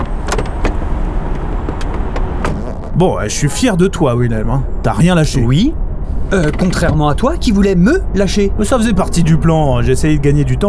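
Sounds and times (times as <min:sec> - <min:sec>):
sharp mechanical clicks and knocks: 0:00.0 - 0:02.8
car engine rumbling as a vehicle pulls in: 0:00.0 - 0:10.6
speech: 0:03.0 - 0:10.6.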